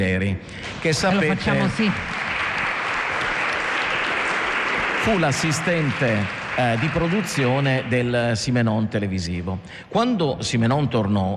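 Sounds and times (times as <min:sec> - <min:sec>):
speech: 0:00.0 - 0:02.2, 0:05.0 - 0:11.3
crowd applauding: 0:00.8 - 0:08.8.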